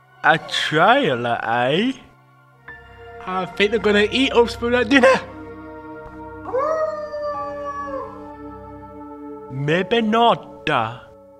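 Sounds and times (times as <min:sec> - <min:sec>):
speech: 0:00.2 - 0:02.0, 0:03.2 - 0:05.3, 0:09.6 - 0:11.0
pack of wolves howling: 0:03.0 - 0:09.6.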